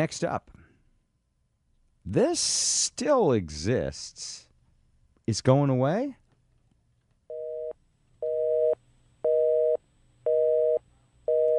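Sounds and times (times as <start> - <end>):
speech: 0.0 - 0.6, 2.1 - 4.5, 5.3 - 6.2
faint low hum: 0.0 - 11.5
telephone busy signal two-pitch electronic tone: 7.3 - 11.5.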